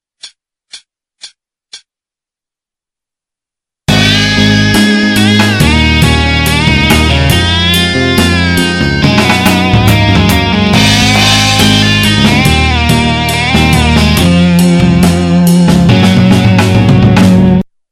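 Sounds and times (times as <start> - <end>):
musical solo: 3.9 - 17.6.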